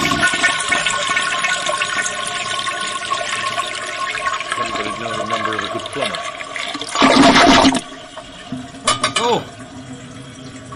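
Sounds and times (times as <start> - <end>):
toilet flushing with a forceful rush of water: 0.0 - 10.7
toilet refill gurgling and trickling: 0.0 - 10.7.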